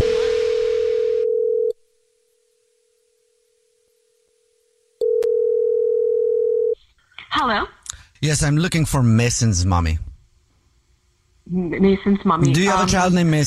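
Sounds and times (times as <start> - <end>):
telephone dial tone: 0.0 - 1.8, 5.0 - 6.8
speech: 7.4 - 10.1, 11.5 - 13.4.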